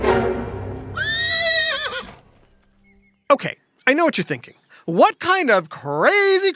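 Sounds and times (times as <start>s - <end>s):
horse neighing: 0.9s - 2.3s
speech: 3.3s - 6.5s.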